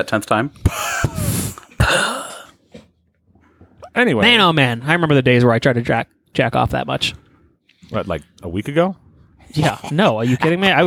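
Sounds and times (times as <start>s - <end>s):
speech: 0.0s - 2.1s, 4.0s - 7.2s, 7.8s - 10.8s
voice imitating a dry cough: 0.7s - 2.6s.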